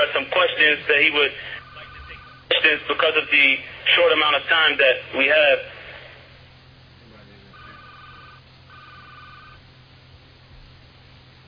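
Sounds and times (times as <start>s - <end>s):
speech: 0.0s - 1.6s, 2.5s - 5.8s
steady hissy phone-line background: 0.0s - 6.5s, 7.1s - 9.9s
telephone on another line ringing with electronic trill bursts: 1.5s - 2.7s, 7.5s - 9.7s.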